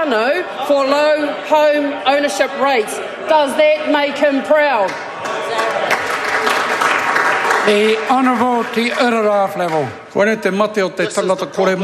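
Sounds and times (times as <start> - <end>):
speech: 0.0 - 5.7, 7.6 - 11.8
murmur of voices: 0.0 - 11.8
group applauding in parliament chamber: 4.6 - 10.5.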